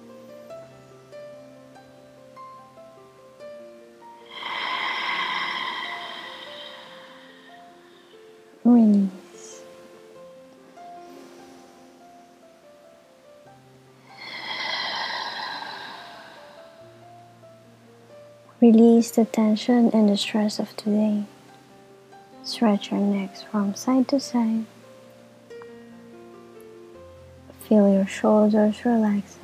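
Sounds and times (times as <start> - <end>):
deep breathing with long loud inhalations: 4.2 - 8.5, 14.0 - 16.9
speech: 18.6 - 21.3, 22.5 - 24.8, 27.7 - 29.4.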